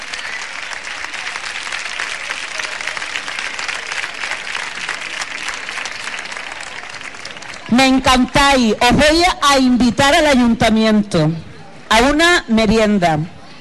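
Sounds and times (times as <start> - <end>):
sizable crowd applauding pageant winners at Hispanidad festival in Huelva, Spain: 0.0 - 8.4
speech: 7.8 - 13.4.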